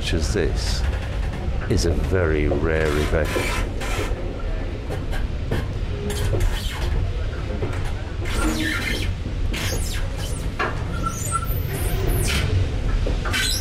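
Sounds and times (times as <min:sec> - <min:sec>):
train pulled by two steam locomotives rumbling past a diesel depot: 0:00.0 - 0:13.5
train wheels clanking over railway junctions: 0:00.0 - 0:13.5
speech: 0:00.1 - 0:01.0, 0:01.7 - 0:04.1.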